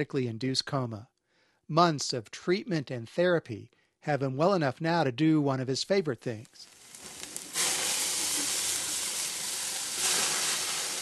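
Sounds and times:
speech: 0.0s - 1.1s, 1.7s - 6.8s
steaks sizzling on a grill as liquid is sprayed on: 6.6s - 10.9s.

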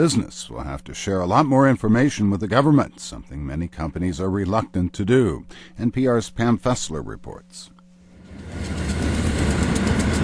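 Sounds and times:
speech: 0.0s - 7.8s
long freight train rumbling across a rusty brown steel bridge over the Mississippi River: 8.2s - 10.2s.

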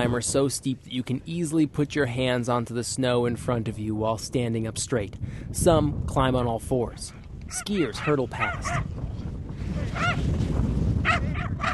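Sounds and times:
speech: 0.0s - 9.2s
steady rushing outdoor noise: 0.0s - 11.7s
dog yelping while chasing a skier down a steep snow slope: 8.0s - 8.9s, 10.0s - 10.2s, 11.0s - 11.7s.

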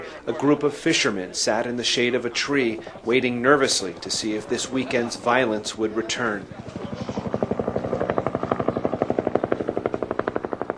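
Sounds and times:
speech: 0.2s - 6.8s
police helicopter rotor chopping overhead: 1.8s - 10.7s
police helicopter engine whine: 6.4s - 10.7s.

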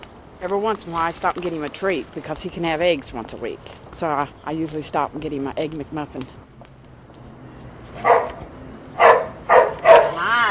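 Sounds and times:
speech: 0.4s - 6.4s
young energetic dog barking: 8.0s - 8.4s, 9.0s - 10.2s.

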